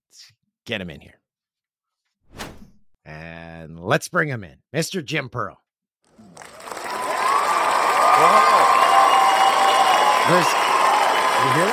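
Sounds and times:
speech: 0:00.1 - 0:01.2, 0:03.1 - 0:05.6, 0:08.2 - 0:08.7, 0:10.3 - 0:10.7, 0:11.4 - 0:11.7
crowd applauding: 0:06.1 - 0:11.7
whoops and cheering voices: 0:06.2 - 0:11.7.

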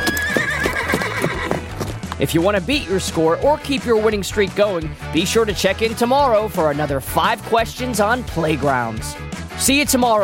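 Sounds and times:
horse whinnying: 0:00.0 - 0:02.0
horse hooves clip-clopping: 0:00.0 - 0:02.3
speech: 0:02.2 - 0:10.2.

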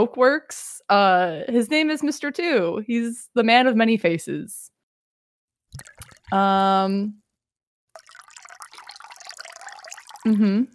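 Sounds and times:
speech: 0:00.0 - 0:04.7, 0:05.8 - 0:07.2, 0:10.2 - 0:10.7
drink pouring and splashing: 0:05.7 - 0:06.6, 0:07.9 - 0:10.7.

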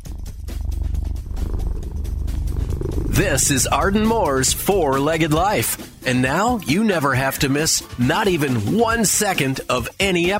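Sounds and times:
cat purring: 0:00.0 - 0:06.2
speech: 0:03.2 - 0:10.3.

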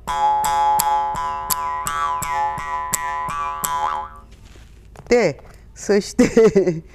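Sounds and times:
mouth harp buzzing drone: 0:00.0 - 0:04.2
mouth harp twanging, played with open mouth: 0:00.0 - 0:04.3
speech: 0:05.1 - 0:06.9
laughter: 0:06.2 - 0:06.8.

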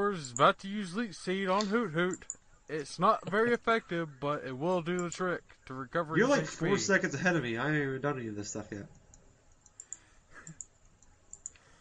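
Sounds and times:
speech: 0:00.1 - 0:09.0
mouse clicks while choosing moves in a video game battle: 0:09.0 - 0:11.7.

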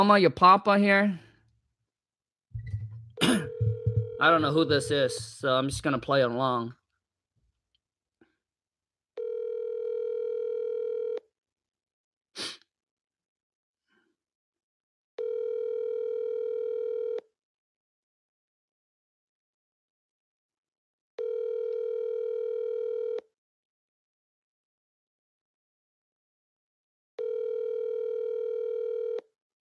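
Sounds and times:
speech: 0:00.0 - 0:01.2, 0:04.2 - 0:06.8
phone line ringing out unanswered: 0:02.7 - 0:05.2, 0:09.2 - 0:11.2, 0:15.2 - 0:17.2, 0:21.2 - 0:23.2, 0:27.2 - 0:29.2.

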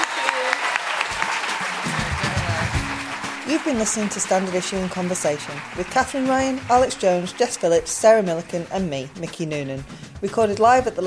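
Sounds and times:
live theatre audience applauding at the Leicester Square Theatre in London: 0:00.0 - 0:09.0
speech: 0:03.5 - 0:11.0.

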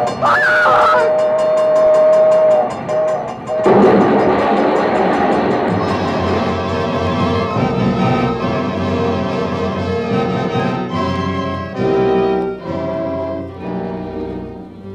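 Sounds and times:
speech: 0:00.0 - 0:01.3
train horn blast at a crossing: 0:00.0 - 0:05.1, 0:05.7 - 0:14.9
rapid ringing clatter at a train crossing: 0:00.0 - 0:11.2.

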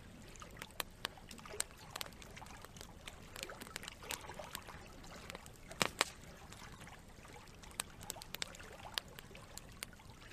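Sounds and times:
campfire crackling: 0:00.0 - 0:10.3
stream rushing and trickling: 0:00.0 - 0:10.3.

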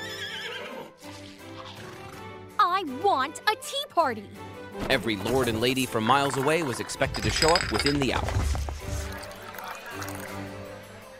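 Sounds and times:
pony neighing in a bedroom: 0:00.0 - 0:02.3
speech: 0:02.8 - 0:08.7.

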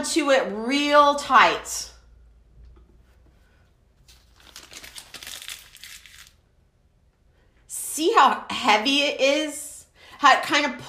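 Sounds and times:
speech: 0:00.0 - 0:01.9, 0:08.0 - 0:09.6, 0:10.2 - 0:10.8
paper being crumpled up: 0:04.0 - 0:06.4.

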